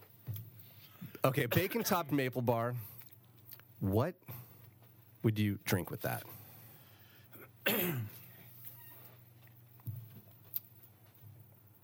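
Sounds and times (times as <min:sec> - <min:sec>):
speech: 0:01.2 - 0:02.9, 0:03.8 - 0:04.4, 0:05.2 - 0:06.4
rough throat clearing: 0:07.4 - 0:08.3.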